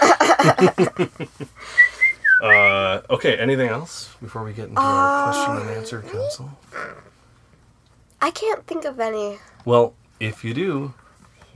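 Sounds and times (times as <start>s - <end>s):
laughter: 0.0s - 3.7s, 4.8s - 6.4s
speech: 0.4s - 1.8s, 3.2s - 7.2s, 8.2s - 11.0s
high whistled tones: 1.6s - 3.0s
voice imitating robot beeps: 2.4s - 2.9s, 4.8s - 6.3s.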